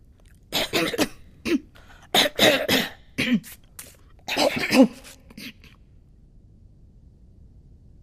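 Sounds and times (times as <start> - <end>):
small coughs: 0.5 - 5.8.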